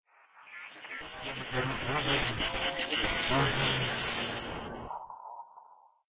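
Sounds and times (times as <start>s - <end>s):
tech ambience: 1.0s - 5.4s.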